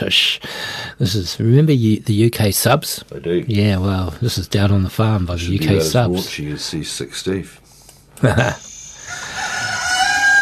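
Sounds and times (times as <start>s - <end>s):
speech: 0.0s - 8.7s
rooster crowing: 9.0s - 10.4s.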